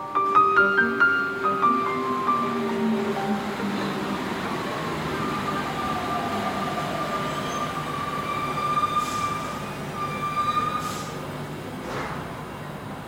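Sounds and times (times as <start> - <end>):
metro train rumbling along the track: 0.1 - 13.0
metro train wheels squealing on rails: 0.3 - 13.0.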